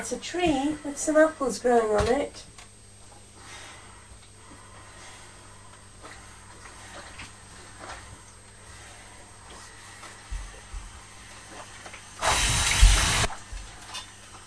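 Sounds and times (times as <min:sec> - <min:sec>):
speech: 0:00.0 - 0:02.5
steam iron hissing: 0:10.2 - 0:13.4.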